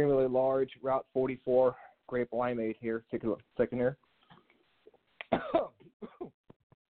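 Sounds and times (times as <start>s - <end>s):
speech: 0.0s - 4.0s, 5.4s - 6.4s
loud harsh coughing fit: 5.3s - 6.4s.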